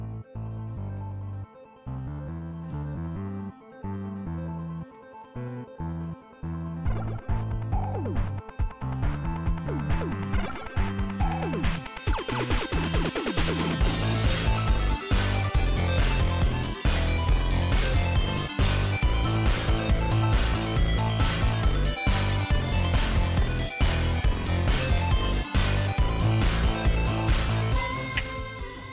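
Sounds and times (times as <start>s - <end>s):
electronic song with Nintendo video game sound samples: 0.0s - 28.9s
steady pounding beat: 6.9s - 28.9s.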